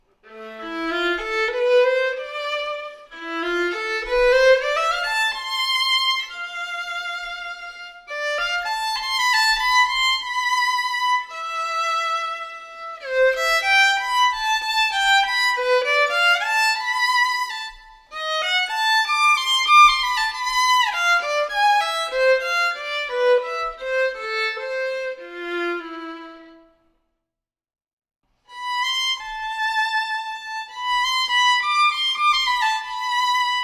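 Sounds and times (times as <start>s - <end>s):
tango violin solo: 0.0s - 26.8s, 28.5s - 33.6s.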